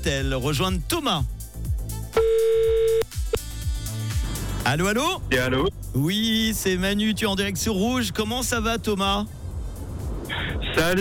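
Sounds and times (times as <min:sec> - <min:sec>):
speech: 0:00.0 - 0:01.4, 0:04.7 - 0:09.4, 0:10.8 - 0:10.9
rhythmic music: 0:00.0 - 0:10.9
WhatsApp call ringing on a computer: 0:02.2 - 0:03.1.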